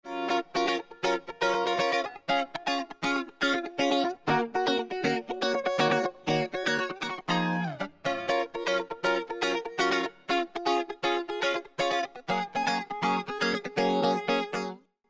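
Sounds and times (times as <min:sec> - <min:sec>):
guitar in stereo: 0:00.0 - 0:14.9.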